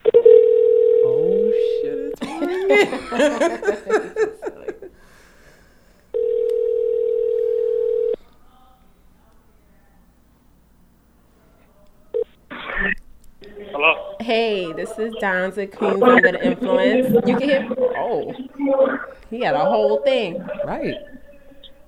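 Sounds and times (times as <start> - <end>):
steady telephone tone while calling a contestant: 0.0 - 2.1, 6.1 - 8.2
people laughing: 2.2 - 5.1, 15.7 - 21.8
speech: 2.7 - 4.4, 14.3 - 21.1.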